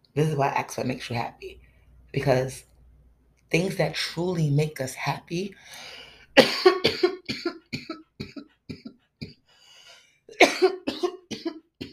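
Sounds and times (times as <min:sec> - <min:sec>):
speech: 0:00.2 - 0:02.7, 0:03.5 - 0:07.6
man coughing in a harsh rasping fit: 0:06.4 - 0:08.9, 0:10.4 - 0:11.9.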